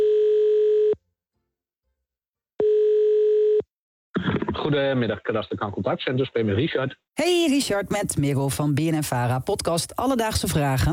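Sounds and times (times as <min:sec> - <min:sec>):
telephone ringback tone: 0:00.0 - 0:01.0, 0:02.6 - 0:03.6
speech: 0:04.7 - 0:10.9.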